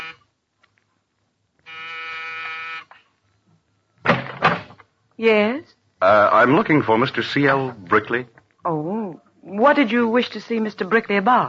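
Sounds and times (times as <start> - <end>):
apartment door buzzer: 0.0 - 0.2, 1.6 - 3.0
speech: 5.2 - 11.4.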